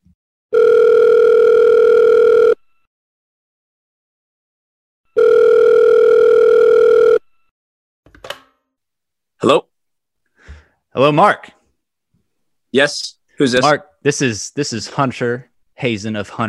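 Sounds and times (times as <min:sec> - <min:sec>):
phone line ringback tones while placing a call: 0:00.5 - 0:02.9, 0:05.1 - 0:07.5
speech: 0:11.0 - 0:11.6, 0:12.7 - 0:16.4.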